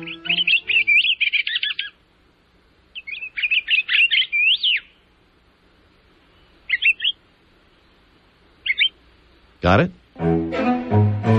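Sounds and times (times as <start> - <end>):
pine grosbeak Pinicola enucleator whistled calls: 0.0 - 2.0, 3.0 - 5.0, 6.4 - 7.2, 8.6 - 9.0
speech: 9.6 - 10.6.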